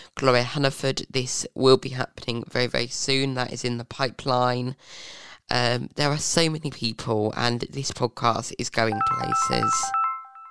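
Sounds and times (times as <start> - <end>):
speech: 0.2 - 10.0
melodic electronic phone ringtone: 8.9 - 10.4.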